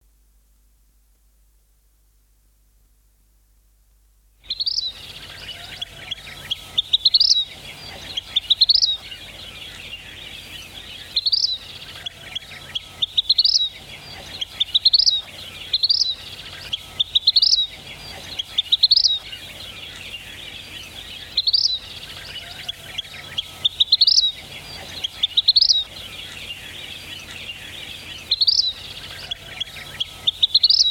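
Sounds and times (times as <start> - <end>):
songbirds singing: 4.4 - 30.9
vermillion flycatcher calling: 4.4 - 30.9.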